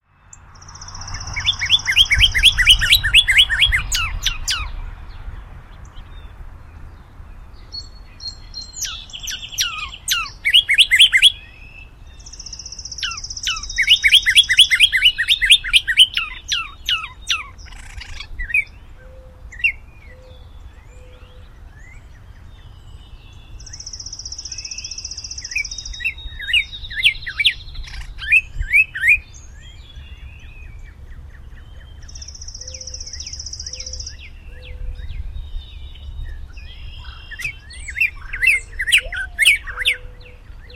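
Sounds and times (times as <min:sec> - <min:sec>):
unidentified bird calling: 0:00.0 - 0:04.8, 0:08.2 - 0:22.2, 0:23.6 - 0:34.9, 0:36.5 - 0:40.7.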